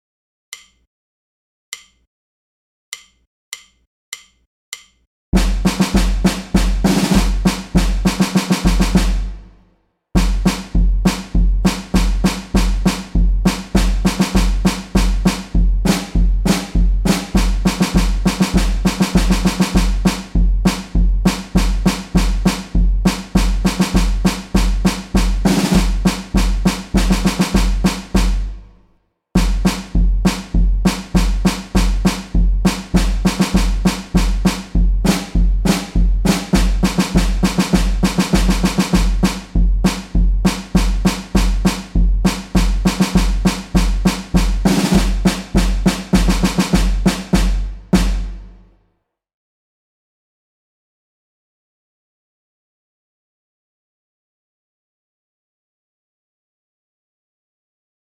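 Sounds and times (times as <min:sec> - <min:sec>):
band drums playing: 0:05.4 - 0:09.5, 0:10.2 - 0:28.7, 0:29.4 - 0:48.5.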